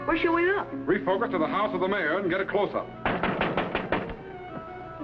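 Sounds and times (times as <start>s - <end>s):
speech: 0.1s - 3.0s
quick evenly spaced knocks on a door: 3.0s - 4.7s.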